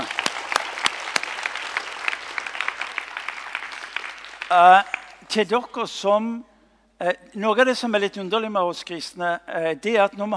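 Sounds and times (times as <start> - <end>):
audience clapping: 0.0 - 5.3
speech: 4.5 - 10.3.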